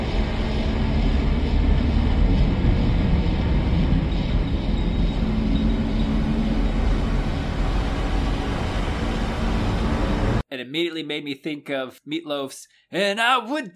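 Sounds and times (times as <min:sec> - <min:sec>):
deep rolling engine rumble with hissing wash: 0:00.0 - 0:10.4
speech: 0:11.0 - 0:13.7.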